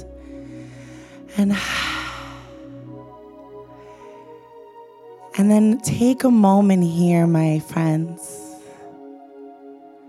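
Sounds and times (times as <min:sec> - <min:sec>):
deep breath drawn in during a guided gratitude meditation: 0:00.0 - 0:04.6
speech: 0:01.4 - 0:01.8, 0:05.4 - 0:08.4.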